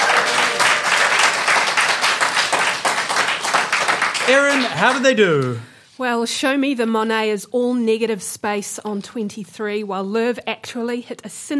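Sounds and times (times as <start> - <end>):
audience applause: 0.0 - 5.6
speech: 4.3 - 11.5.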